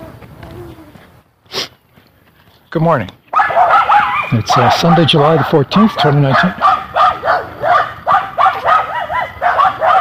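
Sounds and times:
speech: 2.7 - 3.2, 4.3 - 7.5
small dog yapping: 3.3 - 9.9.

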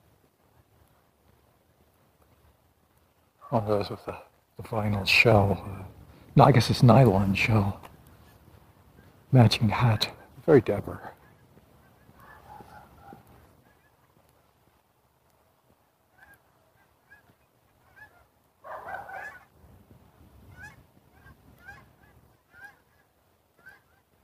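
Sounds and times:
speech: 3.5 - 7.9, 9.3 - 11.2
geese honking: 11.2 - 14.2, 16.1 - 19.6, 20.5 - 24.2.

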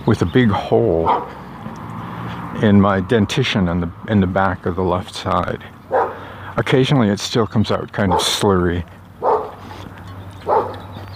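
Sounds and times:
speech: 0.0 - 1.5, 2.5 - 5.8, 6.6 - 9.0
dog barking: 1.0 - 1.3, 5.9 - 6.2, 8.1 - 8.4, 9.2 - 9.6, 10.4 - 10.9.

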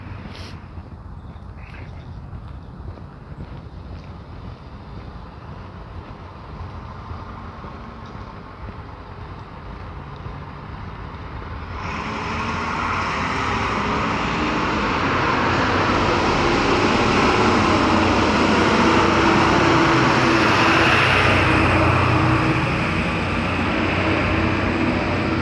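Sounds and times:
loud pickup truck roaring past with engine and road noise: 6.4 - 25.4.

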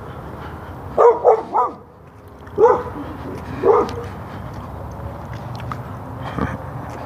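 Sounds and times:
dog barking behind a fence: 1.0 - 1.8, 2.6 - 4.1.

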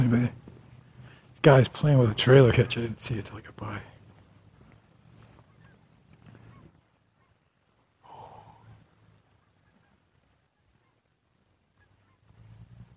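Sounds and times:
steady low rumble of ambient noise: 0.0 - 12.9
speech: 0.2 - 0.4, 1.4 - 3.9
geese honking outdoors: 5.3 - 7.7, 8.4 - 12.9.

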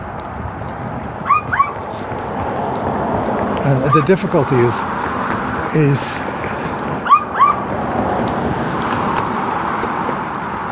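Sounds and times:
steady noise: 0.0 - 10.7
dog yipping: 1.2 - 1.8, 3.8 - 4.1, 7.0 - 7.6
speech: 3.9 - 5.0, 5.7 - 6.3.

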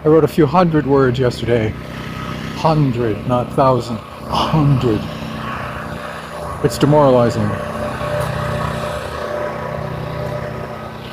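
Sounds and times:
speech: 0.0 - 5.2, 6.6 - 7.7
chemical tree treatment truck machinery engine drone across the street: 0.0 - 11.1.

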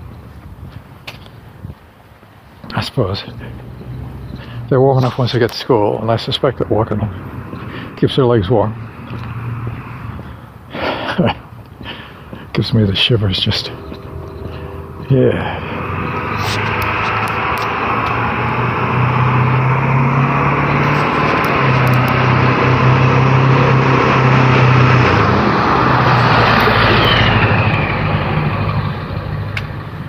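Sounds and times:
speech: 2.7 - 3.7, 4.7 - 7.4, 8.0 - 8.8, 11.2 - 11.4, 12.6 - 13.8, 15.1 - 15.6
loud noisy truck driving past: 3.2 - 30.0.

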